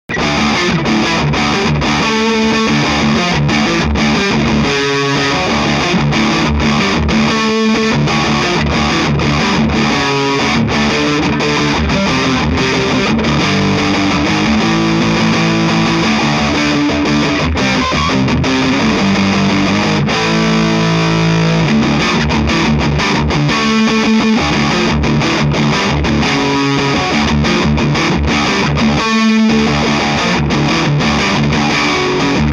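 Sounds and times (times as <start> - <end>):
electric guitar through heavy bridge and neck pickups: 0.0 - 32.5.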